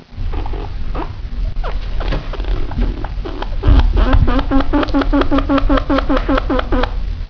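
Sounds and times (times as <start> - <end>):
steady low rumbling noise: 0.0 - 7.2
chinchilla contact call: 1.5 - 7.0.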